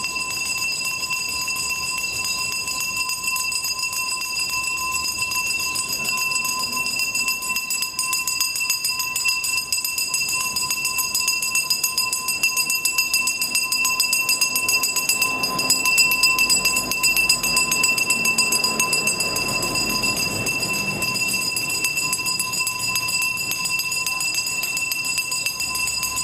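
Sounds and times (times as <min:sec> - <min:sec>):
garbage collector's hand bell ringing: 0:00.0 - 0:26.2
low rumble of street noise: 0:00.0 - 0:26.2.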